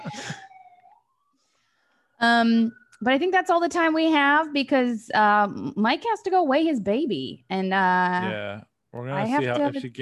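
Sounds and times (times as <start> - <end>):
faint siren wail going by: 0.0 - 4.4
speech: 2.2 - 10.0.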